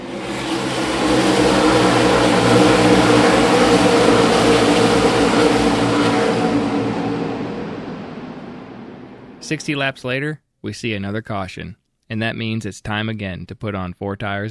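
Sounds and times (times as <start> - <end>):
many stock car engines accelerating at a green-flag restart: 0.0 - 9.8
speech: 9.5 - 14.4.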